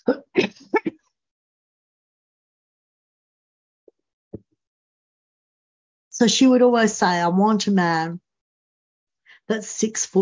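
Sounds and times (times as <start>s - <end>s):
harsh throat-clearing coughs: 0.0s - 1.0s
speech: 6.2s - 8.2s, 9.5s - 10.2s.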